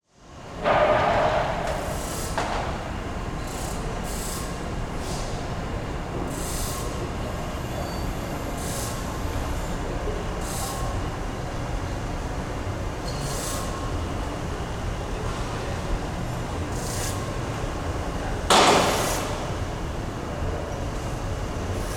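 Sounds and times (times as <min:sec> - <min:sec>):
industrial warehouse ambience: 0:00.1 - 0:21.9.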